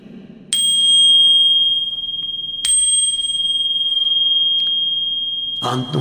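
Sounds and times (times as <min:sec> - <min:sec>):
Buddhist temple bell struck to welcome the new year: 0:00.6 - 0:05.9
speech: 0:05.6 - 0:05.9.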